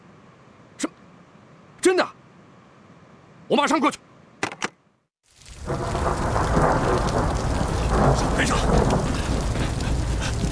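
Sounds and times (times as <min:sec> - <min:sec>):
speech: 0:03.5 - 0:04.0
steady heavy rain: 0:05.2 - 0:10.5
sharp crack: 0:05.3 - 0:10.5.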